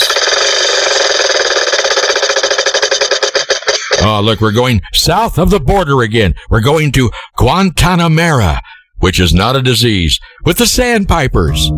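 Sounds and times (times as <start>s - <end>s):
spinning prize wheel ratcheting clicks sound effect: 0.0s - 4.0s
speech: 4.0s - 11.7s.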